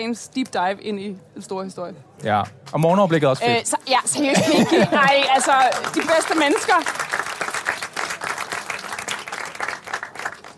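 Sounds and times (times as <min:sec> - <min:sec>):
speech: 0:00.0 - 0:07.0
laughter: 0:04.1 - 0:06.4
live studio audience applause: 0:04.6 - 0:10.5.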